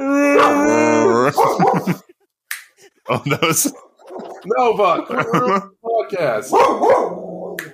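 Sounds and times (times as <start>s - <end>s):
dog whimpering: 0.0s - 1.6s
dog barking: 0.3s - 2.0s, 3.7s - 4.5s, 6.5s - 7.6s
laughter: 0.4s - 5.8s
speech: 1.3s - 2.2s, 3.1s - 3.8s, 4.4s - 7.2s.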